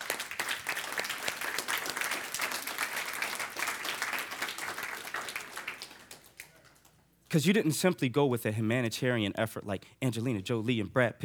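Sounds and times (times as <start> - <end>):
audience applause: 0.0 - 7.0
speech: 7.3 - 11.2.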